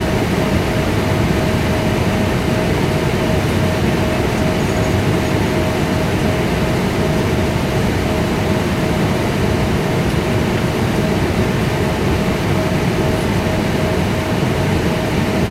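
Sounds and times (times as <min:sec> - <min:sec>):
commercial Airbus A340 aircraft interior: 0:00.0 - 0:15.4.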